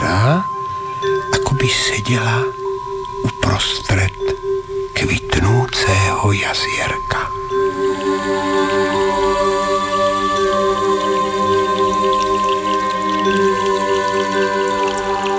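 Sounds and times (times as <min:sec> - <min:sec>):
sustained ringing tone humming: 0:00.0 - 0:15.3
water trickling and dripping down stone walls from small springs: 0:00.0 - 0:15.3
speech: 0:01.6 - 0:02.6, 0:03.6 - 0:08.6.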